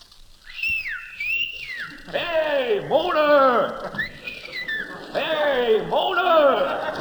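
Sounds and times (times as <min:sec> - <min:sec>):
person whistling high calls: 0:00.4 - 0:02.1, 0:03.9 - 0:05.1
laughter: 0:01.9 - 0:06.9
speech: 0:02.1 - 0:04.0.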